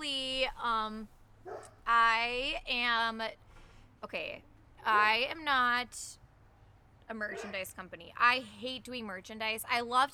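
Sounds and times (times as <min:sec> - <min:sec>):
speech: 0:00.4 - 0:03.4, 0:04.0 - 0:06.2, 0:07.1 - 0:10.1
dogs barking and yelping at home: 0:01.5 - 0:01.8, 0:07.3 - 0:07.6.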